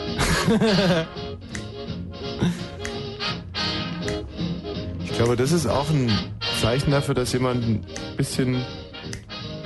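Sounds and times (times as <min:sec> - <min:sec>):
laughter: 0:00.2 - 0:01.2
speech: 0:00.5 - 0:01.2, 0:05.2 - 0:08.8
finger snaps: 0:01.4 - 0:02.0, 0:02.6 - 0:03.4, 0:03.9 - 0:04.5, 0:07.9 - 0:08.3, 0:09.0 - 0:09.5.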